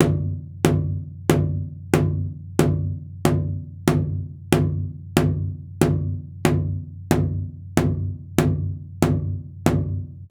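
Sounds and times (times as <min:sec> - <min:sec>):
big drum struck with felt mallet: 0:00.0 - 0:10.3.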